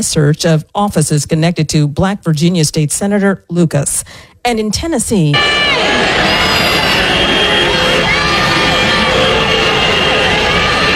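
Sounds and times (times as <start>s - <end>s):
speech: 0.0s - 6.4s
crowd of protesters cheering and shouting outside a state legislature: 5.3s - 10.9s
protesters whooping: 5.4s - 10.9s.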